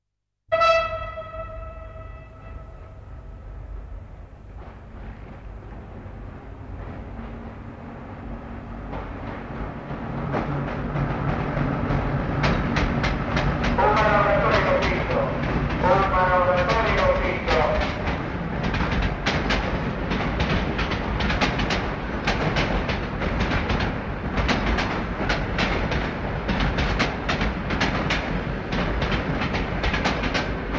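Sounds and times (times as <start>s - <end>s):
train arriving at a station: 0.5s - 30.7s.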